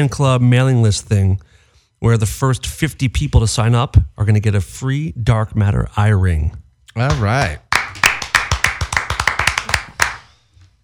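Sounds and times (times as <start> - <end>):
speech: 0.0 - 7.6
sharp hand claps: 6.9 - 10.4.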